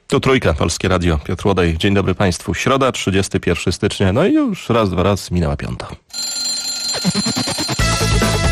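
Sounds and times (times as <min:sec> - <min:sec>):
speech: 0:00.1 - 0:08.4
alarm clock ringing: 0:06.1 - 0:08.2.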